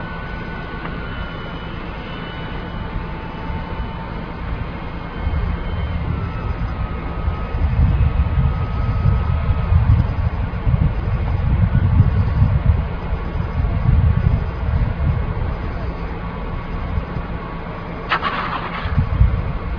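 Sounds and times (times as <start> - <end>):
F-16 fighter jet landing: 0.0 - 19.7.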